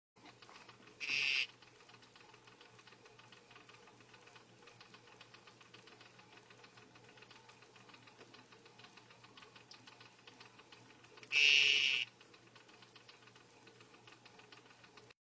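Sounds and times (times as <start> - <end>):
D. t. patricia frog calling: 1.0 - 1.5, 11.3 - 12.1.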